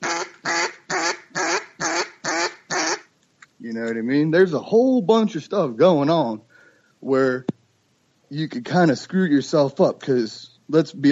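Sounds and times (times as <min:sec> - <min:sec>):
imitated anxious mallard duck quacks before taking flight: 0:00.0 - 0:03.1
speech: 0:03.7 - 0:07.6, 0:08.3 - 0:11.1.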